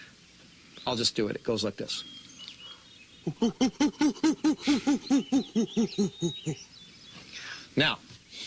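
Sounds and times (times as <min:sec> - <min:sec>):
speech: 0:00.8 - 0:02.2, 0:03.2 - 0:06.7, 0:07.8 - 0:08.4
person imitating a great ape-like hooting call: 0:03.2 - 0:06.7
laughter: 0:03.3 - 0:06.6.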